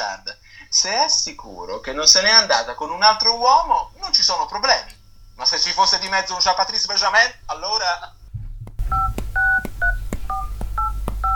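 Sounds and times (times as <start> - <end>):
low steady hum: 0.0 - 11.3
speech: 0.7 - 8.2
touch-tone beeps as a phone number is dialed: 8.8 - 11.3.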